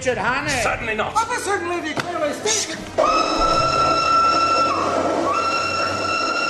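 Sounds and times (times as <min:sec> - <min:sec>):
speech: 0:00.0 - 0:04.0
rumbling clatter of a moving train: 0:02.8 - 0:05.9
steam train whistle shrieking in long steady blasts: 0:03.1 - 0:06.4.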